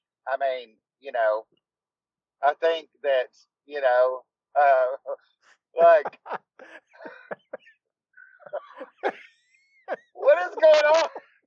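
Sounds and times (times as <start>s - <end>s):
speech: 0.3s - 1.6s, 2.4s - 7.3s, 9.9s - 11.2s
laughter: 5.8s - 11.4s
unmuted call participant with allergies coughing: 6.2s - 7.6s, 8.5s - 9.3s
unmuted call participant with allergies clearing throat: 6.2s - 7.7s, 8.4s - 9.3s.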